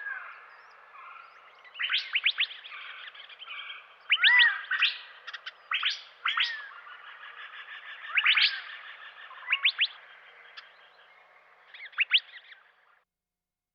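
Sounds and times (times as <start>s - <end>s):
Verdin sharp high chip calls: 1.8s - 10.7s.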